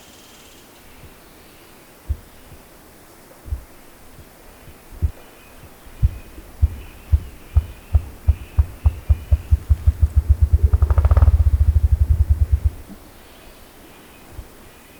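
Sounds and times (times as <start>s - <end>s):
grouse calling: 5.6s - 13.2s.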